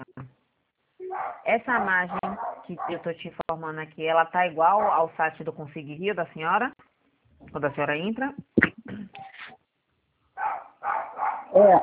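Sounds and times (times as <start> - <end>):
dog barking in a home office: 1.0 - 3.1, 4.8 - 5.1, 10.4 - 11.6
speech: 1.5 - 6.8, 7.6 - 8.4, 11.6 - 11.8.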